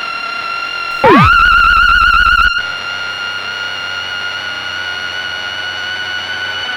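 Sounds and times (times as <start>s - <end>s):
Wogglebug synthesizer module echoes: 0.9s - 2.7s.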